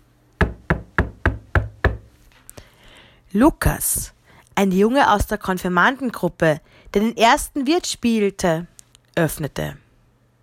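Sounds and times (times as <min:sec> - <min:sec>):
knocks on the wooden door frame of an inn stage set: 0:00.4 - 0:02.1
speech: 0:03.3 - 0:09.8.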